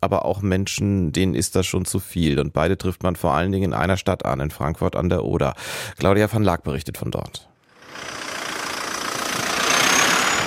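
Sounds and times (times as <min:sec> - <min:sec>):
speech: 0:00.0 - 0:08.2
car engines idling in slow stop-and-go traffic: 0:07.8 - 0:10.4.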